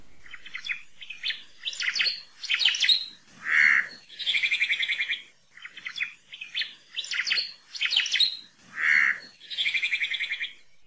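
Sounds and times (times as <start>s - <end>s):
Oma'o Hawaiian thrush singing warbling notes and buzzy trills: 1.8s - 10.1s.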